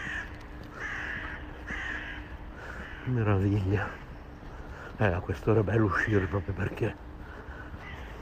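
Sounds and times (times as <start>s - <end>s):
crows cawing outdoors: 0.0s - 5.1s, 5.7s - 8.2s
steady hum: 0.0s - 8.2s
speech: 3.1s - 4.0s, 5.0s - 7.1s.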